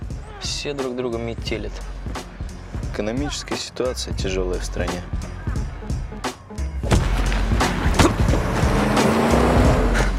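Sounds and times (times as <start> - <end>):
speech: 0.6 - 2.2, 3.0 - 5.4
foreign-made car pulling away sharply down a road: 6.9 - 10.1.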